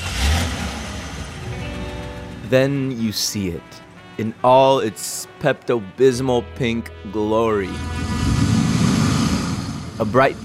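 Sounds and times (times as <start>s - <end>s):
car engine rumbling: 0.0s - 4.2s, 7.7s - 10.4s
speech: 2.5s - 8.4s, 10.0s - 10.4s.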